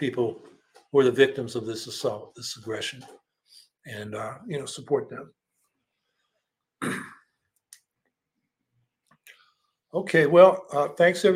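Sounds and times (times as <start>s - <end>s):
speech: 0.0s - 3.2s, 3.8s - 5.4s, 6.8s - 7.2s, 9.9s - 11.3s
single loud harsh cough or throat clear: 6.8s - 7.3s.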